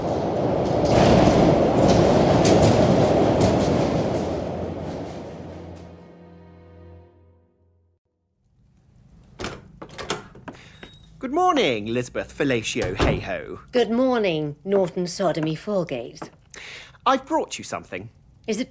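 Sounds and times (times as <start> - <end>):
train passing with rumbling and rattling wagons: 0.0 - 7.0
speech: 11.6 - 18.6.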